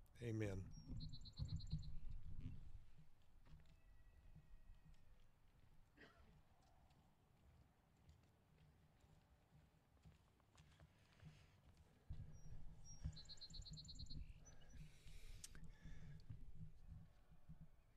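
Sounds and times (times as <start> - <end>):
birds chirping outdoors: 0.0 - 2.5, 12.1 - 17.9
speech: 0.2 - 1.9.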